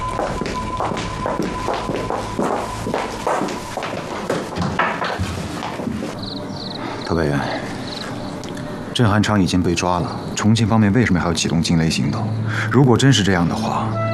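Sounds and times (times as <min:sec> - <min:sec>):
footsteps of several people setting off and walking away: 0:00.2 - 0:06.3
speech: 0:09.0 - 0:14.0.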